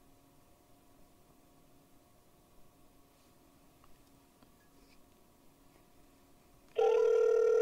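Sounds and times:
electronic telephone ringback tone while placing a call: 6.8s - 7.5s.

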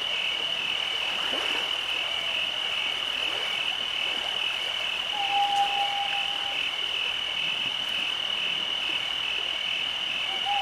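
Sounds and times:
cicadas and crickets droning at night: 0.0s - 10.6s
whistle-like note: 5.2s - 6.6s.

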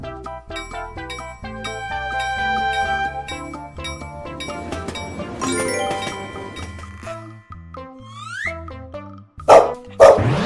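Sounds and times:
bright tinkling music: 0.2s - 8.8s
dog barking: 9.5s - 10.3s.

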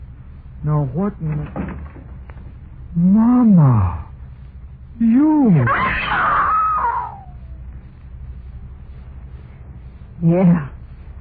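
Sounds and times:
speech: 0.6s - 2.1s, 2.9s - 4.1s, 5.0s - 6.4s, 10.2s - 10.7s
woman screaming: 5.7s - 7.4s.

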